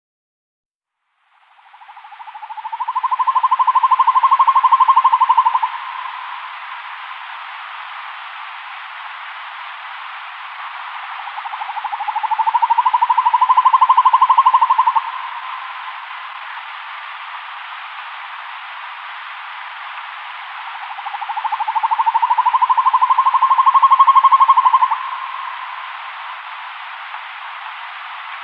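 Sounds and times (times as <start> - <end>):
eagle owl hooting: 1.6 - 6.5, 11.2 - 16.0, 20.6 - 26.0.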